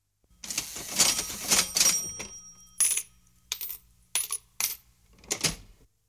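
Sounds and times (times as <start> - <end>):
cash register: 0.4 - 5.7
small change coins jingling: 1.0 - 4.8.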